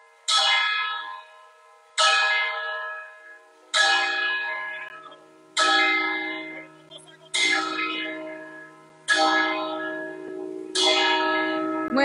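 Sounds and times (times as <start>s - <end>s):
church bell ringing: 0.0s - 12.0s.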